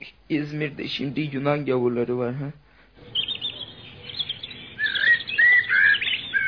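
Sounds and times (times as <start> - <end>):
speech: 0.3 - 2.6
bird chirping in a plum tree in a garden: 3.0 - 6.4.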